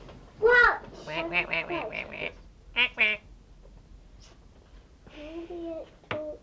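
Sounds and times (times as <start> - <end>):
person imitating duck quacks: 1.1 - 3.3.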